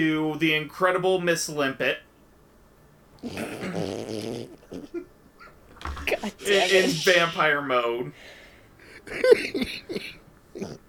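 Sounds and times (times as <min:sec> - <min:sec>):
speech: 0:00.0 - 0:02.1, 0:03.2 - 0:04.0, 0:06.3 - 0:08.4, 0:09.1 - 0:10.7
harsh coughs: 0:03.3 - 0:04.0.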